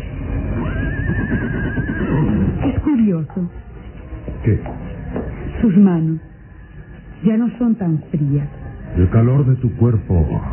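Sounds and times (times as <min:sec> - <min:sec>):
horse neighing: 0:00.4 - 0:02.8
speech: 0:03.0 - 0:03.7, 0:04.4 - 0:04.9, 0:05.6 - 0:06.3, 0:07.2 - 0:10.5.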